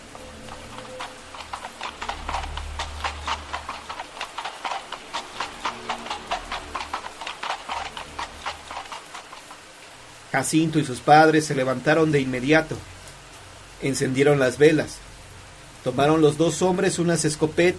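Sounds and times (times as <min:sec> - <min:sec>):
horse galloping on hard ground outside a house before dawn: 0:00.0 - 0:10.9
speech: 0:10.4 - 0:12.9, 0:13.8 - 0:15.0, 0:15.8 - 0:17.7.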